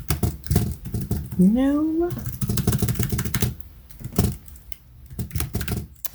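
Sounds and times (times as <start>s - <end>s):
computer keyboard typing while searching an article: 0.0s - 1.4s, 2.1s - 6.1s
speech: 1.4s - 2.4s.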